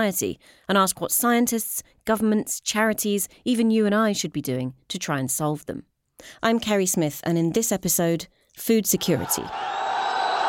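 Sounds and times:
speech: 0:00.0 - 0:09.8
crowd of around 2,000 protesters shouting in a northern Egyptian city: 0:09.0 - 0:10.4.

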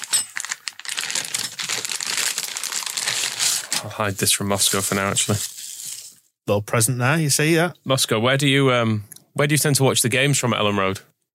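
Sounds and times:
plastic bag crinkling and rustling: 0:00.0 - 0:03.9, 0:04.5 - 0:06.2
bubble wrap crackling while handled: 0:00.0 - 0:06.2
speech: 0:03.8 - 0:05.5, 0:06.5 - 0:11.1.

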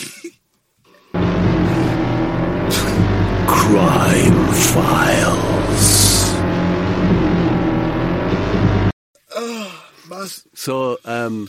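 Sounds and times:
motorbike engine running at a loud throaty rumble: 0:01.2 - 0:08.9
speech: 0:03.7 - 0:06.0, 0:10.2 - 0:11.4.

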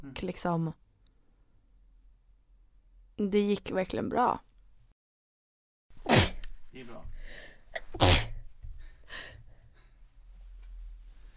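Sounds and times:
speech: 0:00.0 - 0:00.8, 0:03.2 - 0:04.5
person sneezing out stage smoke: 0:06.0 - 0:06.4, 0:07.8 - 0:08.4
soft breathing: 0:07.1 - 0:07.7, 0:08.6 - 0:11.3.

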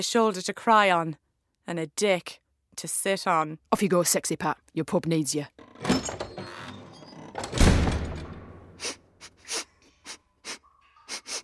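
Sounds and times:
speech: 0:00.0 - 0:05.8
man sniffing loudly: 0:08.8 - 0:11.4.

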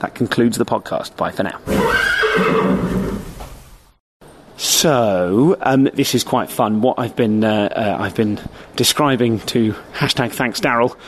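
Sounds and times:
speech: 0:00.0 - 0:03.3, 0:04.6 - 0:11.0
horse neighing: 0:01.6 - 0:03.6.

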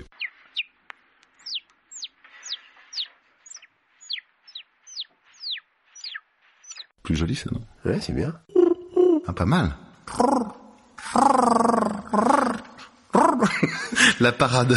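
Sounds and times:
whistled bird call imitation: 0:01.4 - 0:06.9
speech: 0:07.1 - 0:08.6, 0:09.3 - 0:10.6, 0:11.2 - 0:12.3, 0:14.2 - 0:14.7
laughter: 0:13.2 - 0:14.7.

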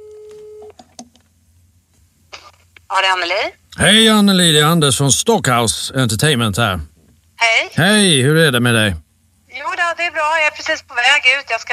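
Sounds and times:
faint telephone ringback tone while placing a call: 0:00.0 - 0:00.7
speech: 0:02.9 - 0:09.0, 0:10.0 - 0:11.7.

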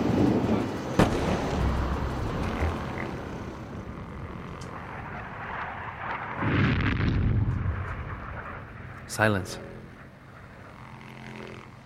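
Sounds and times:
steady roar: 0:00.0 - 0:11.8
distant bombs exploding over Beirut during an air raid: 0:00.9 - 0:02.9, 0:05.0 - 0:08.9
speech: 0:09.2 - 0:09.7.

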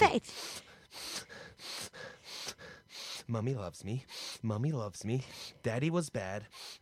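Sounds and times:
speech: 0:00.0 - 0:00.6, 0:03.3 - 0:06.8
person sniffing the edges of book pages: 0:00.3 - 0:03.3, 0:04.1 - 0:04.4, 0:06.5 - 0:06.8.

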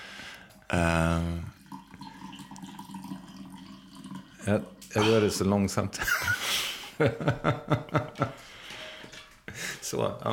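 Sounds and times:
coffee trickling into a cup: 0:00.4 - 0:05.5
speech: 0:00.7 - 0:01.5, 0:04.5 - 0:08.6, 0:09.9 - 0:10.3
coffee pouring into a cup: 0:01.4 - 0:05.4.

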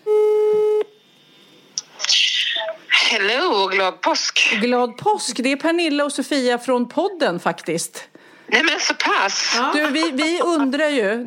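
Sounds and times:
telephone tone while calling a friend: 0:00.0 - 0:00.9
speech: 0:03.1 - 0:11.2
laughter: 0:09.4 - 0:11.1.

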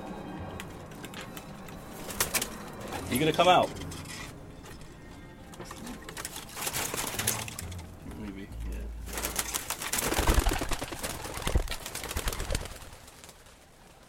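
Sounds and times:
pigeon wing flapping: 0:00.7 - 0:03.1, 0:05.6 - 0:08.0, 0:09.0 - 0:14.0
speech: 0:03.1 - 0:03.8
pigeon hens shuffling in a loft: 0:05.5 - 0:07.9, 0:09.0 - 0:14.0.

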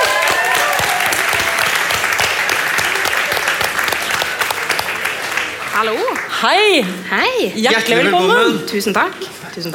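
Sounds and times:
whoops and cheers: 0:00.0 - 0:02.0
large audience applauding: 0:00.0 - 0:06.6
speech: 0:05.8 - 0:09.7.

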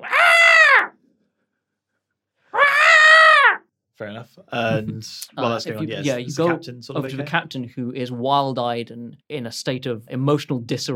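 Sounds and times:
voice imitating an ape's screech: 0:00.0 - 0:01.0, 0:02.5 - 0:03.6
speech: 0:04.0 - 0:10.9.

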